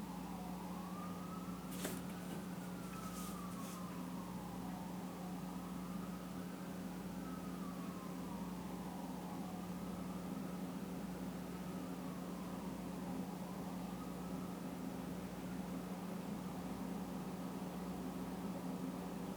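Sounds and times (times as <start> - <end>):
constant low engine-like hum: 0.0 - 19.3
emergency vehicle sirens passing outside: 0.0 - 19.3.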